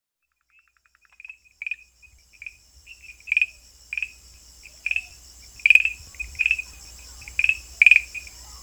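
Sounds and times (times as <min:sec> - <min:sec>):
Farmland green tree frog Rhacophorus arvalis calling: 0:00.3 - 0:08.6.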